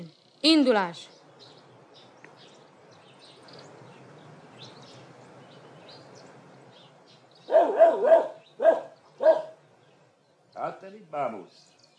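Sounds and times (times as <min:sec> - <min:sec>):
speech: 0:00.4 - 0:01.1, 0:07.5 - 0:09.5, 0:10.6 - 0:11.7
dog barking harshly: 0:07.5 - 0:09.6.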